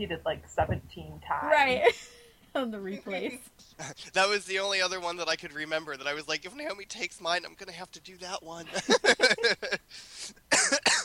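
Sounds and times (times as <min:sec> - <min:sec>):
speech: 0:00.0 - 0:11.0
laughter: 0:03.8 - 0:06.1, 0:08.2 - 0:10.8
person coughing: 0:10.5 - 0:11.0.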